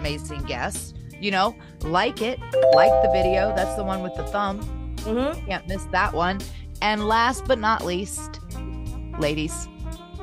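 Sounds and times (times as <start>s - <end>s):
speech: 0.0s - 8.4s, 9.2s - 9.7s
bright notification bell chime: 2.6s - 4.7s.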